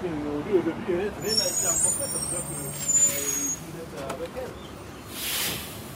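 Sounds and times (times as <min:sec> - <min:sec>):
indistinct voices murmuring: 0:00.0 - 0:05.2
bus rumbling: 0:00.0 - 0:05.9
street noise: 0:00.0 - 0:05.9
thin high squeal of bus brakes: 0:01.1 - 0:05.9
bus air brakes releasing: 0:01.2 - 0:03.8, 0:05.1 - 0:05.9.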